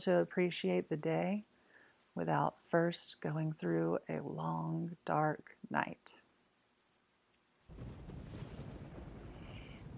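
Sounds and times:
speech: 0.0 - 1.5, 2.2 - 6.2
deep low rumble of thunder: 7.7 - 9.9
heavy rain downpour: 7.7 - 9.9.

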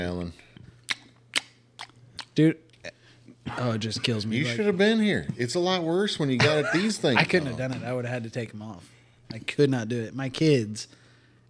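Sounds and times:
speech: 0.0 - 0.5, 2.4 - 11.0
person chewing with mouth open: 0.6 - 2.4
laughter: 6.4 - 8.1.

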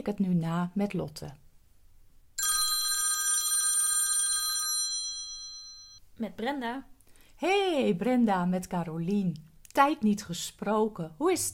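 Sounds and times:
speech: 0.0 - 1.4, 6.2 - 11.5
old-style telephone bell ringing: 2.4 - 6.0.

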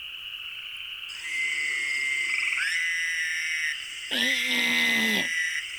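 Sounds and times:
chorus of high-pitched trilling calls: 1.1 - 5.6
Fowler's toad buzzing nasal bleat: 4.1 - 5.6.

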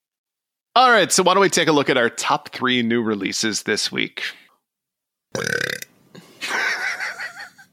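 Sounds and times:
speech: 0.9 - 4.5
person burping: 5.3 - 5.9
laughter: 6.4 - 7.7.

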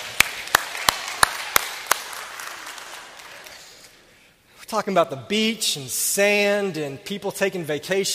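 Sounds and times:
hands clapping: 0.0 - 4.0
speech: 4.7 - 8.1.

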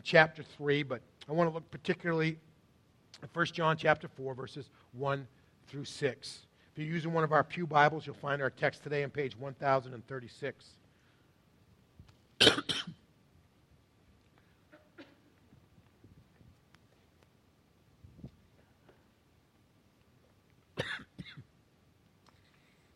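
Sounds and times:
speech: 0.0 - 2.5, 3.1 - 10.8
person coughing harshly: 12.4 - 13.0, 14.7 - 15.3, 20.8 - 21.5.

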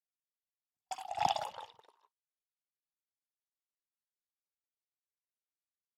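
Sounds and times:
dark imperial stout beer pouring from a can into a glass: 0.9 - 2.0.

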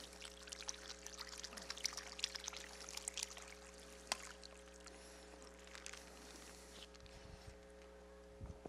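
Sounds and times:
water poured into a folded newspaper: 0.0 - 6.6
low steady hum: 0.0 - 8.6.

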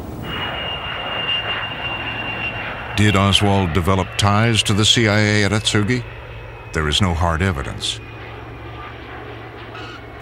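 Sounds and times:
spy plane jet aircraft roaring overhead: 0.0 - 10.1
speech: 3.0 - 6.1, 6.8 - 8.1.

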